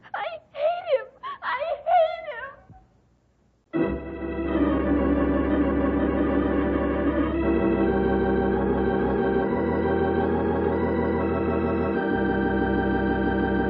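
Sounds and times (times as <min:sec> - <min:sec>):
girl crying and wailing: 0:00.2 - 0:02.5
steady sustained musical passage: 0:03.8 - 0:13.6.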